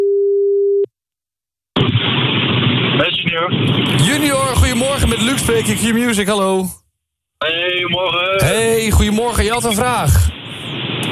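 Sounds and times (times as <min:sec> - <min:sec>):
telephone line tone beep as a call is placed: 0:00.0 - 0:00.9
harsh rushing telephone line noise: 0:01.8 - 0:06.4, 0:08.4 - 0:11.1
speech: 0:03.4 - 0:06.8, 0:07.4 - 0:10.4.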